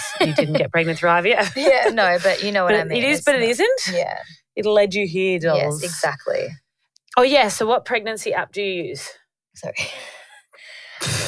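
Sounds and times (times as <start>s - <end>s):
laughter: 0.0s - 3.2s
speech: 0.2s - 6.6s, 7.2s - 10.2s
breathy inhale: 10.0s - 11.2s
loud rough low rumbling burp: 11.0s - 11.2s.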